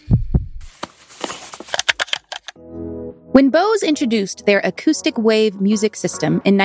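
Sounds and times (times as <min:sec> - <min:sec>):
deep heartbeat sound effect double thump: 0:00.0 - 0:00.7
speech: 0:03.3 - 0:06.6.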